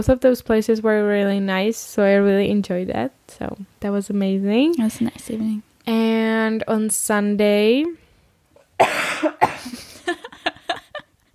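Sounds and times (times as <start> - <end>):
speech: 0.0 - 8.0, 8.8 - 10.2
person coughing hard and harsh: 8.8 - 10.1.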